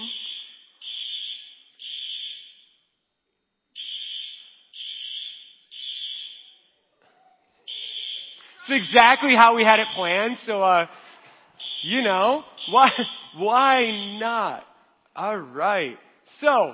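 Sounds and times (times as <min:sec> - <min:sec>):
electronic alarm system blaring high-pitched pulses: 0:00.0 - 0:02.8, 0:03.8 - 0:06.7, 0:07.7 - 0:10.5, 0:11.6 - 0:14.3
speech: 0:08.7 - 0:11.0, 0:11.8 - 0:16.7
laughter: 0:12.8 - 0:13.3.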